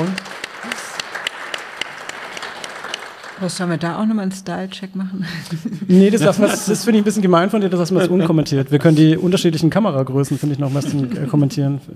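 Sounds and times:
audience applause: 0:00.0 - 0:03.9
speech: 0:03.4 - 0:11.9
laughter: 0:05.2 - 0:09.1, 0:10.6 - 0:11.6.

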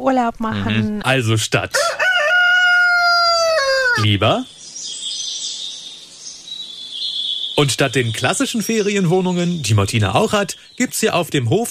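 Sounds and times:
speech: 0:00.0 - 0:02.0, 0:04.0 - 0:04.6, 0:07.6 - 0:11.7
rooster crowing on a farm: 0:01.7 - 0:04.1.

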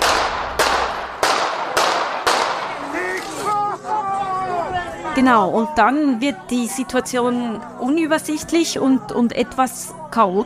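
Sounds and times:
gunshots fired at a crowd: 0:00.0 - 0:03.4
people shouting and screaming in alarm: 0:02.6 - 0:06.8
speech: 0:05.2 - 0:10.4.

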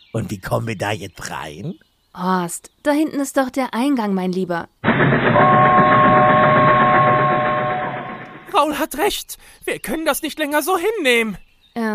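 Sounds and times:
speech: 0:00.1 - 0:06.0, 0:08.6 - 0:11.9
high-pitched metallic whine of passing train: 0:04.8 - 0:08.6
train rushing past: 0:04.8 - 0:08.6.

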